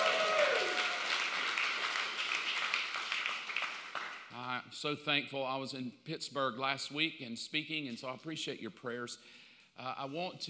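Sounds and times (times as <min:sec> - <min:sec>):
large crowd clapping and cheering: 0:00.0 - 0:04.3
speech: 0:04.8 - 0:10.4.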